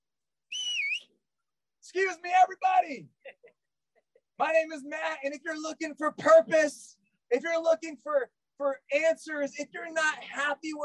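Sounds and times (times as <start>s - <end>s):
person whistling loudly in a crowded university food court: 0.5s - 1.1s
speech: 1.9s - 3.6s, 4.4s - 10.8s
laughter: 2.8s - 4.8s.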